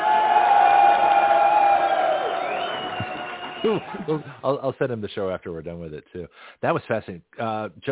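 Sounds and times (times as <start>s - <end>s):
applause: 0.0s - 4.3s
crowd cheering with whoops: 0.0s - 4.4s
laughter: 2.8s - 4.4s
speech: 3.7s - 7.9s.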